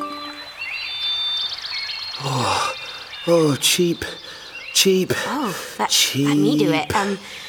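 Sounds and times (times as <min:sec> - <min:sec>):
birds chirping in trees: 0:00.0 - 0:07.4
babbling stream water: 0:02.1 - 0:07.4
speech: 0:03.3 - 0:04.2, 0:04.8 - 0:07.4.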